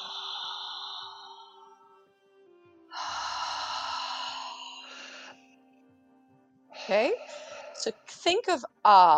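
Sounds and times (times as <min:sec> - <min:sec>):
loud open-mouthed breathing close to the microphone: 0:00.0 - 0:02.0, 0:02.9 - 0:05.5, 0:06.8 - 0:07.8
speech: 0:06.9 - 0:09.1.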